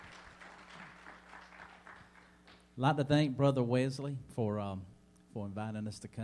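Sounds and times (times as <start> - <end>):
audience applauding: 0.0 - 2.6
speech: 2.8 - 6.2.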